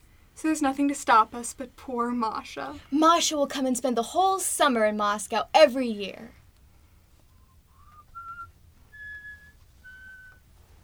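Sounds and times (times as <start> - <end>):
speech: 0.4 - 6.4
woman whistling a slow tune: 7.7 - 10.4.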